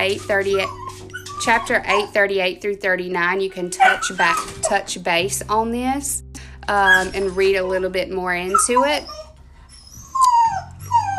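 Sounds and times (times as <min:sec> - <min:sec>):
speech: 0:00.0 - 0:00.8, 0:01.4 - 0:09.2
puppy whimpering in high drawn-out whines: 0:00.0 - 0:02.2, 0:03.6 - 0:04.8, 0:06.8 - 0:11.1.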